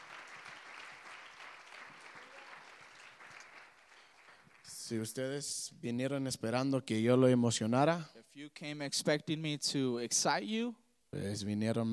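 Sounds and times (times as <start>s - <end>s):
audience applauding: 0.0s - 5.0s
speech: 4.9s - 11.9s.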